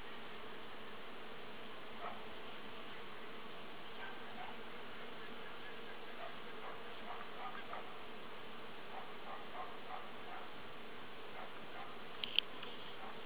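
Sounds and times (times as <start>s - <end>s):
bee buzzing: 0.0s - 13.2s
faint ticks: 11.5s - 13.1s.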